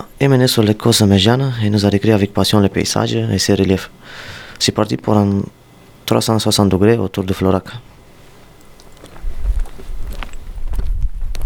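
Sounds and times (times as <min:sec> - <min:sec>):
speech: 0:00.0 - 0:07.9
footsteps of hikers walking at a steady pace over limestone rocks on a ridge cornice: 0:08.9 - 0:11.4.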